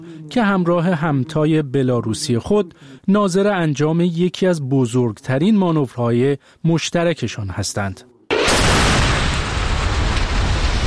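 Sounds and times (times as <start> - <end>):
speech: 0.0 - 8.1
ballistic and cruise missile launch roaring with rocket exhaust: 8.3 - 10.8.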